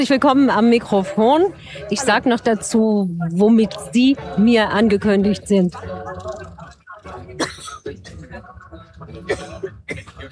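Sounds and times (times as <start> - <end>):
speech: 0.0 - 6.4, 7.1 - 10.2
person coughing: 7.4 - 8.1, 9.3 - 10.2.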